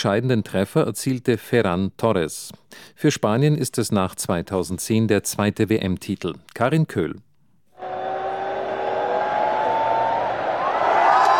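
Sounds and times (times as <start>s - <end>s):
speech: 0.0s - 7.3s
team members shouting: 7.8s - 11.3s
thousands of fans and football team cheering at World Cup trophy lift in New York: 7.8s - 11.3s.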